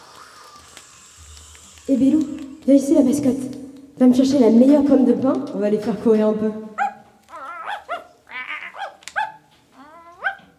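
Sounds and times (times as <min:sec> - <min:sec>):
speech: 0:01.9 - 0:06.7
small dog yipping and barking: 0:06.8 - 0:10.5.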